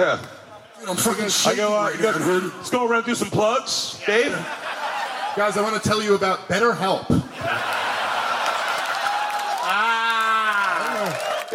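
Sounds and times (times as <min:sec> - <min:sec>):
speech: 0:00.0 - 0:04.6, 0:05.4 - 0:07.7
laughter: 0:04.1 - 0:06.1, 0:07.2 - 0:11.3
audience applause: 0:07.4 - 0:11.5
person letting out a long cheering whoop: 0:09.1 - 0:11.5.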